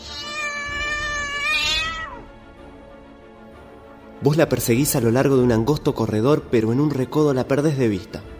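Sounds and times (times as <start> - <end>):
female cat letting out a loud drawn-out yowl: 0.0 - 2.3
speech: 4.2 - 8.3.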